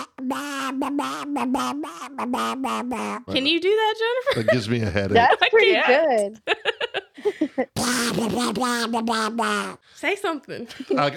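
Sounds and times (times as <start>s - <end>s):
person imitating a duck quacking: 0.0s - 3.8s, 7.8s - 9.9s
speech: 0.8s - 11.1s.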